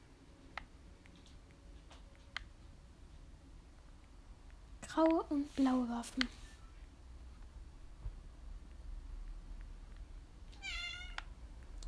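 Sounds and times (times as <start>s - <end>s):
speech: 5.0s - 6.4s
cat meowing: 10.5s - 11.3s.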